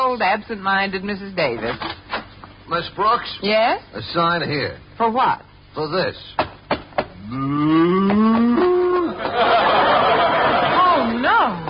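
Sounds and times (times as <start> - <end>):
speech: 0.1 - 2.0, 2.7 - 6.5, 7.2 - 9.7
sharp knocks: 6.4 - 7.2
cow mooing: 7.2 - 9.0
laughter: 8.4 - 11.6.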